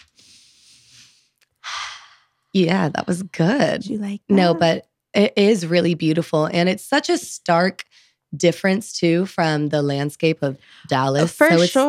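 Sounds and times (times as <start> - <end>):
person sniffing: 0.0 - 2.2
person taking exaggerated deep inhale of fresh air through nose: 0.0 - 2.3
speech: 2.6 - 11.8.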